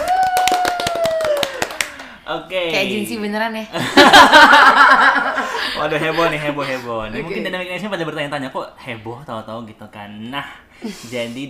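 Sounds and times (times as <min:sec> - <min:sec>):
long whooping voice sliding downward in pitch: 0:00.0 - 0:01.8
small group clapping in quick uneven bursts: 0:00.0 - 0:02.2
speech: 0:02.3 - 0:11.4
laughter: 0:03.8 - 0:07.0.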